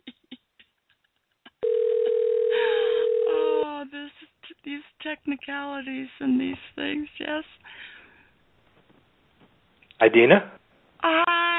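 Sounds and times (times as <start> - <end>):
steady continuous telephone dial tone: 1.6 - 3.7
speech: 5.0 - 7.9, 10.0 - 11.4.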